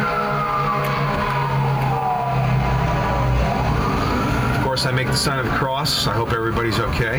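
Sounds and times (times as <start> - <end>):
wavering siren-like tone sliding downward: 0.0 - 5.7
fire truck engines rumbling on a busy street: 0.0 - 7.1
speech: 4.8 - 7.1.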